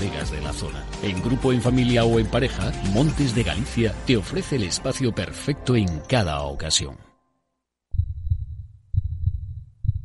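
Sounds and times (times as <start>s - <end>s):
speech: 0.1s - 7.1s
heartbeat sound effect with deep double thumps: 7.9s - 10.0s.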